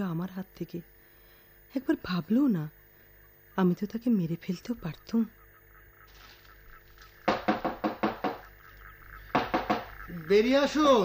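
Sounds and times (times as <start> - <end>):
speech: 0.0 - 1.0, 1.7 - 2.8, 3.6 - 5.4, 10.1 - 11.0
knuckles knocking on a door: 7.3 - 8.5, 9.3 - 9.9.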